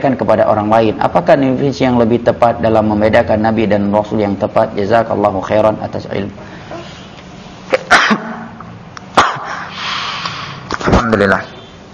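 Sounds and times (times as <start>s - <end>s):
speech: 0.0s - 6.5s, 11.1s - 11.5s
low steady hum: 0.0s - 11.9s
presenter sneezing during an online Islamic study lesson: 7.7s - 9.9s.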